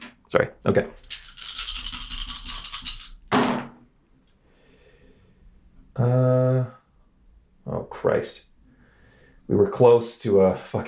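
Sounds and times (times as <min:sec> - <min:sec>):
speech: 0:00.3 - 0:01.2, 0:08.0 - 0:08.5, 0:09.5 - 0:10.8
dice rattling in a cupped hand: 0:00.9 - 0:03.3
dice clattering onto a hard surface: 0:01.0 - 0:03.6.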